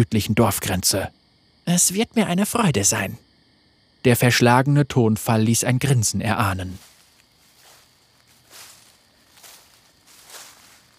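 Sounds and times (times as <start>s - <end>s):
speech: 0.0s - 3.3s, 4.0s - 6.9s
footsteps crunching through dry crackling leaves: 6.7s - 10.9s.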